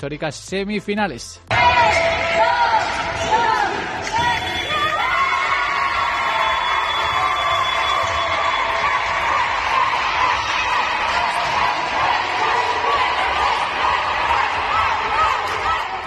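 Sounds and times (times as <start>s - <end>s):
speech: 0.0s - 4.3s
women's handball team cheering after a European Cup quarter-final win: 1.5s - 16.0s.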